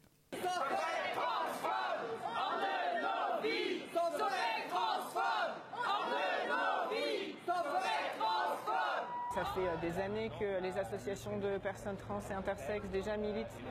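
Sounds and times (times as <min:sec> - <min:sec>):
protest crowd chanting in unison outside a hospital: 0:00.4 - 0:09.3
speech: 0:09.5 - 0:13.6.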